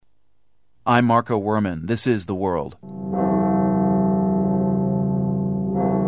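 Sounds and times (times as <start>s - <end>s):
speech: 0.9s - 3.0s
Russian Orthodox church bells tolling in mourning: 2.8s - 6.0s.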